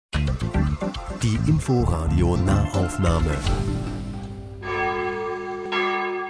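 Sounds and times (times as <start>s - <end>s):
speech: 1.2s - 4.0s
church bells ringing at midday: 2.5s - 6.2s.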